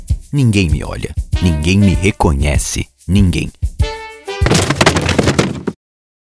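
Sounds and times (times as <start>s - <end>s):
speech: 0.3s - 3.6s
wooden table breaking: 4.4s - 5.8s.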